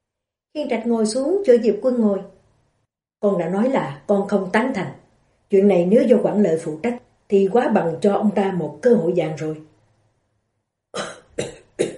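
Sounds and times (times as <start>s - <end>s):
speech: 0.6s - 2.3s, 3.2s - 9.7s
long rasping cough: 11.0s - 11.9s.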